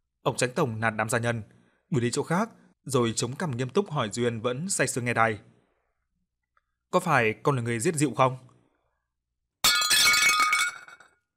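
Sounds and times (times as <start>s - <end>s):
speech: 0.2s - 5.5s, 6.9s - 8.5s
teacup held in the hand shattering: 9.6s - 11.3s
china fragments tinkling: 9.7s - 11.1s.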